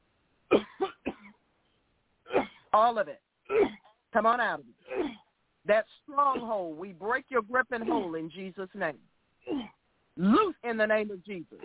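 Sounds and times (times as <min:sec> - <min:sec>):
deep forceful cough from the gut during a prayer session: 0:00.5 - 0:01.4, 0:03.5 - 0:03.9, 0:09.5 - 0:09.8
speech: 0:02.8 - 0:11.6.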